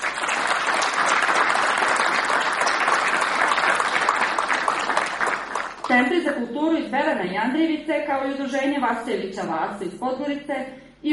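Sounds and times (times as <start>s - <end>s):
audience applauding: 0.0s - 5.9s
speech: 5.9s - 11.1s.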